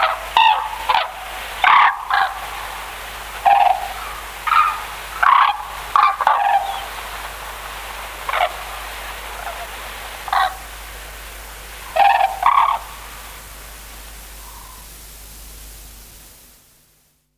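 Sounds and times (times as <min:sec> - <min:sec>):
white-naped crane loud harsh trumpeting calls: 0:00.0 - 0:13.7
steady low background noise: 0:00.0 - 0:17.3.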